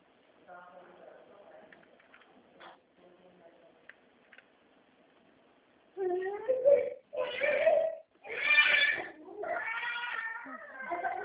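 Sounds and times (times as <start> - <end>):
baby boy crying in loud strained wails: 7.1 - 11.2.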